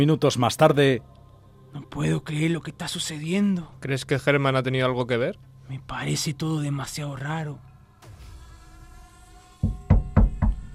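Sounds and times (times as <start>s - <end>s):
speech: 0.0s - 1.1s, 1.7s - 7.7s
knocking on a door: 9.6s - 10.7s.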